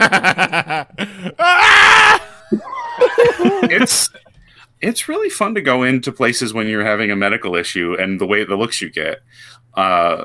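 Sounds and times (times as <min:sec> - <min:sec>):
speech: 0:00.0 - 0:01.5, 0:03.7 - 0:04.2, 0:04.8 - 0:10.2
person laughing in choppy bursts: 0:00.0 - 0:04.4
person imitating a giant man screaming in pain: 0:01.4 - 0:03.7.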